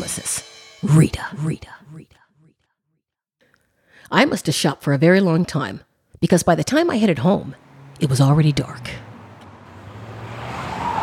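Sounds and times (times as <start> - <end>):
speech: 0.1 - 2.1, 4.1 - 9.0
road noise: 6.7 - 11.0
car engine rumbling: 7.2 - 11.0
tire whine: 7.6 - 11.0.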